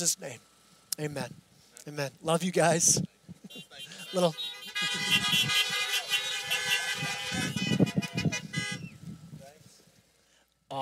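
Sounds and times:
speech: 0.0s - 5.9s
car horns honking at a church in an industrial area: 3.5s - 9.1s.

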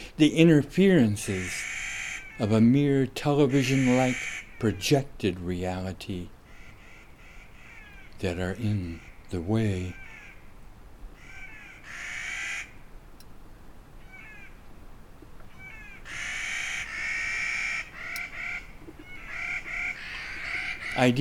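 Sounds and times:
steady rushing background hiss: 0.0s - 21.1s
speech: 0.2s - 1.7s, 2.4s - 6.4s, 8.2s - 10.0s, 21.0s - 21.1s
Clark's Nutcracker family Columiana nucifraga counter-singing harsh calls in Oregon: 1.4s - 2.6s, 3.5s - 4.6s, 6.5s - 8.2s, 8.8s - 10.4s, 11.2s - 12.8s, 15.5s - 21.1s.

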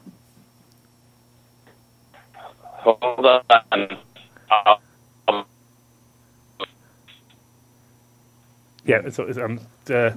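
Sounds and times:
steady low electrical hum: 0.0s - 10.1s
voice through a bad cell phone connection, garbled and robotic: 2.2s - 5.5s
speech: 2.8s - 4.8s, 8.9s - 10.1s.

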